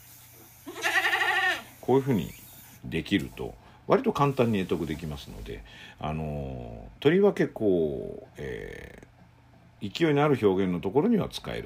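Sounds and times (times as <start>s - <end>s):
human voice imitating a goat bleat with quivering vibrato: 0.7s - 1.7s
speech: 1.9s - 9.1s, 9.8s - 11.6s.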